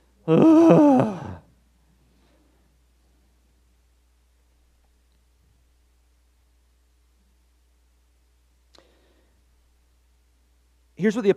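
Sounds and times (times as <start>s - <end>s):
audience groaning together on cue: 0.3s - 1.4s.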